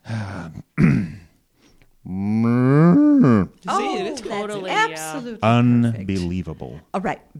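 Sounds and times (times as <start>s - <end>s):
person imitating cow moo: 2.1s - 3.6s
speech: 5.1s - 7.3s.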